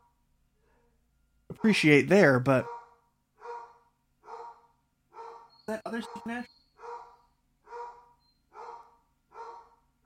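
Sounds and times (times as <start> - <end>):
speech: 1.5 - 2.7, 5.8 - 6.5
dog barking: 2.6 - 10.0.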